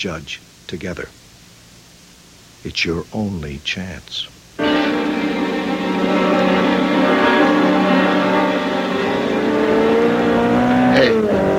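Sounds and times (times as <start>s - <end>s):
speech: 0.0s - 1.2s, 2.6s - 5.0s
sports car speeding past at close to 90 or 100: 4.6s - 11.5s.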